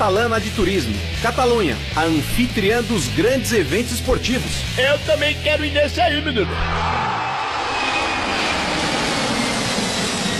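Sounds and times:
speech: 0.1s - 7.1s
airplane passing overhead: 6.6s - 10.3s.

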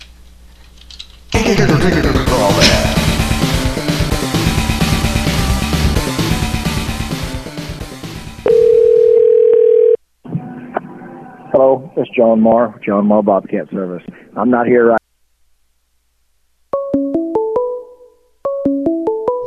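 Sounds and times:
music: 1.4s - 8.5s, 16.7s - 19.4s
telephone dial tone after the caller hung up: 8.5s - 10.0s
speech: 11.6s - 15.0s.

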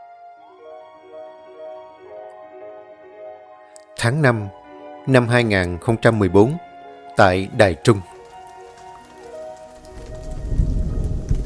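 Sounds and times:
speech: 4.0s - 8.1s
steady drizzling rain: 7.2s - 11.4s.

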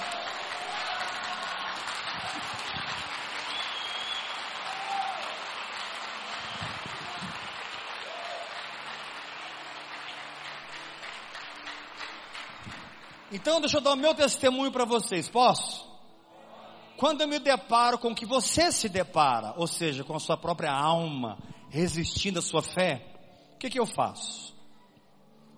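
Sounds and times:
audience applauding at a charismatic religious seminar: 0.0s - 14.4s
speech: 13.3s - 15.8s, 17.0s - 24.4s.

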